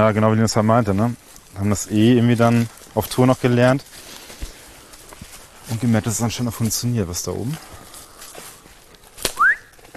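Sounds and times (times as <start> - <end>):
speech: 0.0 - 4.1, 5.7 - 7.8
person whistling as a signal that mushrooms have been found: 9.4 - 9.7.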